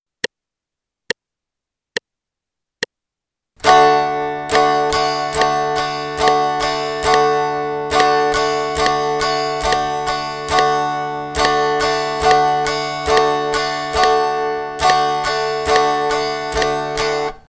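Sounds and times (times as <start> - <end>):
guitar strumming a D chord in eighth notes: 3.6 - 17.4.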